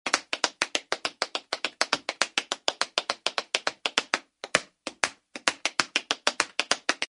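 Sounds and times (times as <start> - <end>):
intricate tap dance steps: 0.1 - 7.1.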